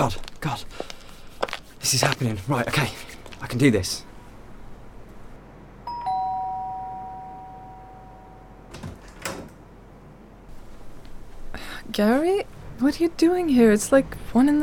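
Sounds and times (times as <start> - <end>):
speech: 0.0 - 0.8, 1.8 - 4.1, 12.0 - 14.6
single bright electronic doorbell chime: 5.8 - 8.7.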